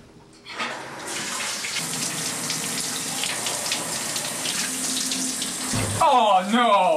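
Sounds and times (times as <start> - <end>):
shower water running: 0.6 - 6.5
speech: 6.0 - 6.9.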